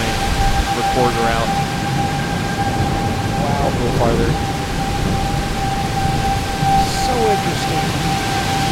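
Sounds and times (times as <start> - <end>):
heavy rain: 0.0 - 8.7
tornado siren during a rainstorm: 0.0 - 8.7
speech: 0.8 - 1.7, 3.6 - 4.5, 7.1 - 8.3.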